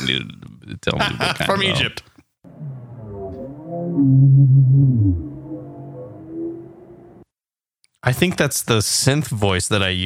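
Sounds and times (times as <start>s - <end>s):
speech: 0.0s - 2.1s, 3.8s - 5.3s, 8.0s - 10.0s
whale moans with wavering sliding tones: 2.5s - 7.3s.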